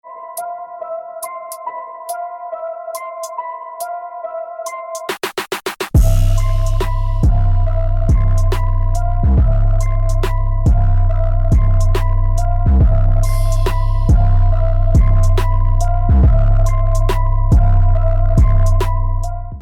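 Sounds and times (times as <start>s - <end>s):
deep bass impact: 6.0s - 19.6s.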